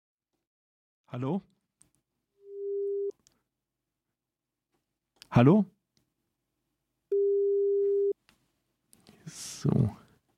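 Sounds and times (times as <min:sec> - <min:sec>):
speech: 0:01.1 - 0:01.6, 0:05.3 - 0:05.8, 0:09.3 - 0:10.0
telephone busy signal: 0:07.1 - 0:08.1.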